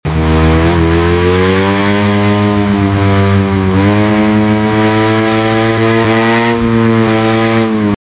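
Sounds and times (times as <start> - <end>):
motorcycle noise: 0.0 - 8.0.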